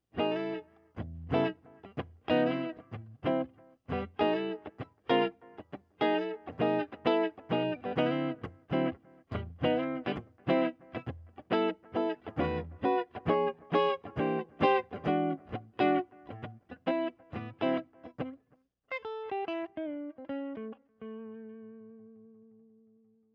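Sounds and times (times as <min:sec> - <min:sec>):
electric guitar with PAF neck pickup: 0:00.0 - 0:22.8.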